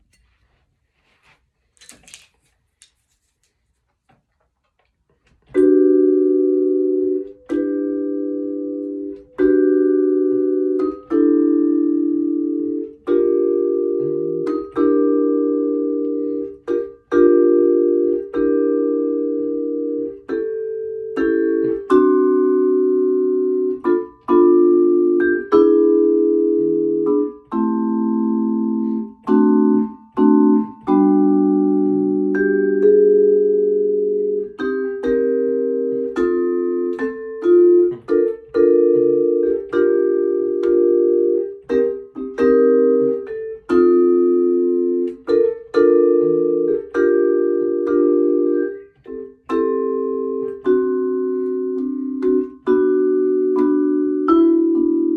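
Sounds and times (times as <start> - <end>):
vibraphone: 5.6 - 55.1.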